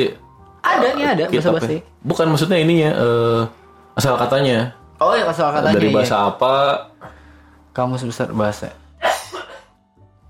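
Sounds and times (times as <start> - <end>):
speech: 0.0 - 6.9, 7.8 - 8.8
unwell person coughing: 9.0 - 9.7.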